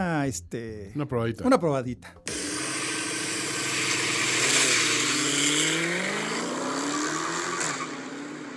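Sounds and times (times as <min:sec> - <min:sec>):
speech: 0:00.2 - 0:02.4
powerful car engine revving and accelerating during a test drive: 0:02.6 - 0:08.5.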